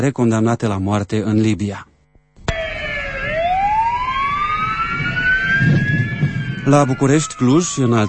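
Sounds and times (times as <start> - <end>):
speech: 0.0 - 1.9, 6.7 - 8.0
ambulance and fire engine sirens wailing in Romanian cities: 2.5 - 8.0
low traffic rumble: 2.5 - 8.0.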